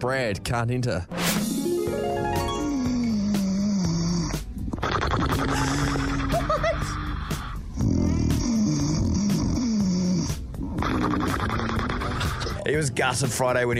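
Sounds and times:
speech: 0:00.0 - 0:03.0, 0:12.7 - 0:13.7
loud human snoring: 0:02.6 - 0:06.4, 0:07.0 - 0:12.6.

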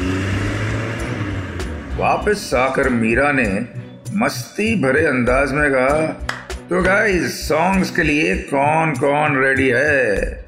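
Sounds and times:
car engine rumbling: 0:00.0 - 0:04.1
broadband road noise: 0:00.0 - 0:04.4
speech: 0:02.0 - 0:10.4.

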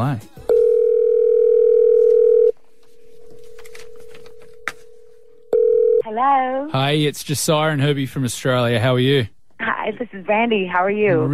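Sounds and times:
speech: 0:00.0 - 0:00.4, 0:06.1 - 0:11.3
loud steady telephone dial tone: 0:00.5 - 0:02.6, 0:03.4 - 0:06.0.

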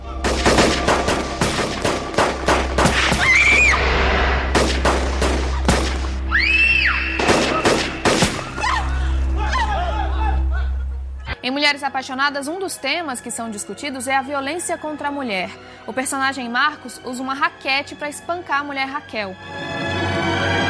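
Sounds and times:
rapid bursts of blank gunfire during a filmed street shootout in Leblon: 0:00.2 - 0:03.3, 0:04.5 - 0:06.2, 0:07.2 - 0:08.5
people shouting: 0:02.9 - 0:03.8, 0:08.4 - 0:10.8
people screaming: 0:03.0 - 0:04.0, 0:06.3 - 0:07.2, 0:08.4 - 0:10.8
laughter: 0:08.5 - 0:11.4
speech: 0:11.8 - 0:20.6.

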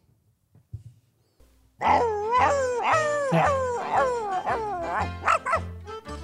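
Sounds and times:
speech: 0:01.8 - 0:04.2
dog barking and howling in a pirate-themed amusement park ride: 0:01.8 - 0:05.7.

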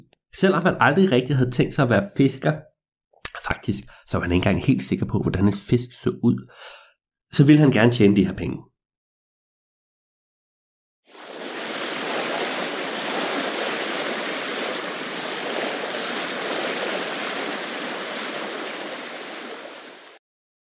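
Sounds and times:
speech: 0:00.4 - 0:02.7, 0:03.5 - 0:08.7
ocean water rushing at sea as a fishing boat sails out: 0:11.1 - 0:20.2.

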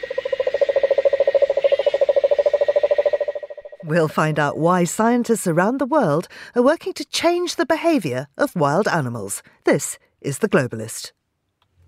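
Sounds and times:
large warty cane toad in Australia calling with a rapid trill: 0:00.0 - 0:04.6
speech: 0:03.9 - 0:11.2.

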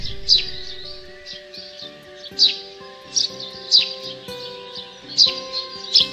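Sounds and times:
steady tonal hum: 0:00.0 - 0:01.3
Eurasian tree sparrow chirping in a pollard willow, played from a device: 0:00.0 - 0:06.1.

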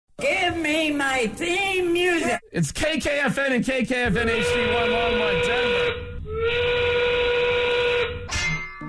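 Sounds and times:
speech: 0:00.2 - 0:07.0
factory steam whistle blowing: 0:04.2 - 0:08.3.

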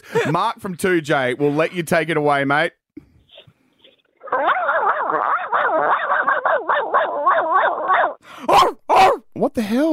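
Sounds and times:
speech: 0:00.2 - 0:02.8, 0:09.4 - 0:09.9
person imitating a chihuahua barking: 0:04.2 - 0:09.3.

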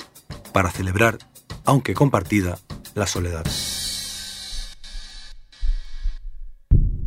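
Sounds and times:
speech: 0:00.5 - 0:03.8
heartbeat: 0:05.6 - 0:07.0.

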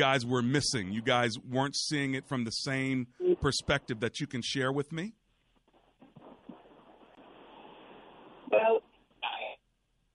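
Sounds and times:
speech: 0:00.0 - 0:05.2
garbled voice fragments on a breaking-up mobile phone call: 0:08.5 - 0:09.6.

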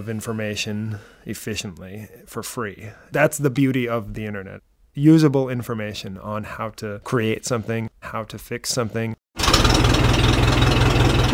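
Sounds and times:
speech: 0:00.0 - 0:09.8
1956 Ford tractor or 1967 Volvo sports car engine idling: 0:09.4 - 0:11.3.

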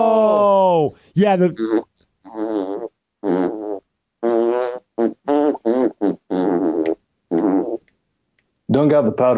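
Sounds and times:
speech: 0:00.8 - 0:01.8, 0:08.8 - 0:09.3
buzzy fart sounds at shifting pitches playing a song's tune: 0:01.6 - 0:07.8.

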